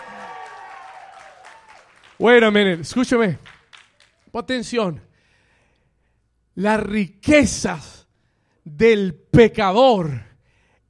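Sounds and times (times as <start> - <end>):
congregation applauding: 0.0 - 4.3
people cheering and calling out: 0.0 - 4.3
speech: 2.2 - 3.5, 4.4 - 5.1, 6.6 - 8.0, 8.7 - 10.3.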